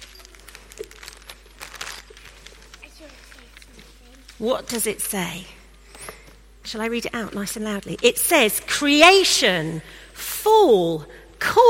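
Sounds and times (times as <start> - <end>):
paper crinkling and rustling as a wrapped parcel is pulled open: 0.0 - 5.2
speech: 4.4 - 5.6, 6.7 - 11.6.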